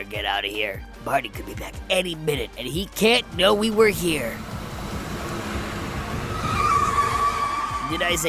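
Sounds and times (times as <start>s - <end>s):
speech: 0.0s - 4.5s, 7.9s - 8.2s
van engine rumbling as it pulls up: 2.1s - 8.2s
brief high brake squeal of a van stopping: 4.1s - 8.2s.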